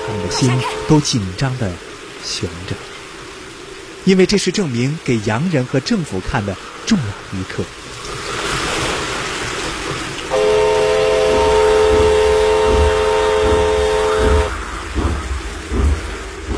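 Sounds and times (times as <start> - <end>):
train horn of a train approaching on flooded tracks: 0.0 - 1.2, 10.3 - 14.5
train rumbling onto a flooded track bed during a rainy test run: 0.0 - 3.2, 5.2 - 16.5
speech: 0.2 - 2.9, 4.0 - 8.2.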